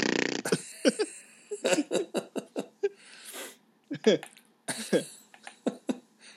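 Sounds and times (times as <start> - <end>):
wet sputtering fart noises made with the mouth: 0.0 - 0.6
laughter: 0.5 - 3.0.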